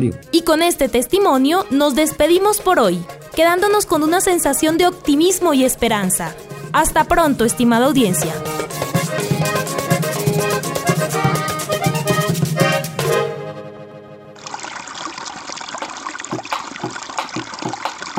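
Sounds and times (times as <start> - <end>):
speech: 0.0 - 9.8
short burst of music: 0.0 - 14.4
river water flowing: 14.4 - 18.1.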